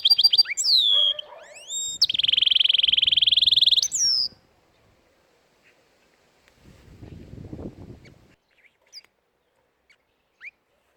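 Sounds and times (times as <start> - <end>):
domestic canary singing: 0.0 - 4.4.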